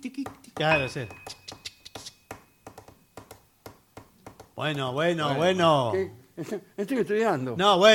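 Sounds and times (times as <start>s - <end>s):
speech: 0.0s - 1.4s, 4.6s - 7.9s
pen cap tapping against a hard surface: 0.5s - 4.8s.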